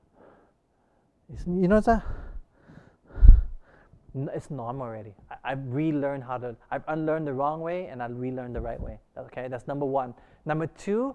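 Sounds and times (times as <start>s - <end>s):
faint quieter breathing: 0.0s - 1.1s, 1.9s - 4.0s, 10.2s - 10.5s
speech: 1.3s - 2.2s, 4.2s - 11.1s
deep abdominal diaphragmatic breath drawn in: 2.0s - 4.0s.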